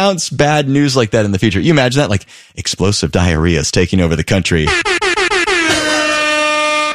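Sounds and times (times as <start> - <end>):
speech: 0.0 - 5.0
air horn sound effect blaring: 4.7 - 6.9.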